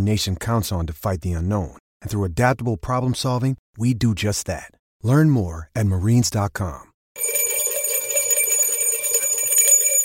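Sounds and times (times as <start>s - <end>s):
speech: 0.0s - 7.3s
bells ringing with bright sustained metallic tones: 7.2s - 10.0s.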